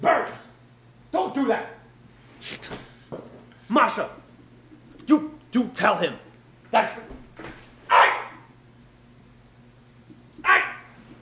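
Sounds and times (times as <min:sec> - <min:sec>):
low steady hum: 0:00.0 - 0:11.2
speech: 0:01.4 - 0:01.8, 0:03.7 - 0:04.2, 0:05.1 - 0:07.1
dog with a cold barking: 0:07.9 - 0:08.5, 0:10.4 - 0:11.0.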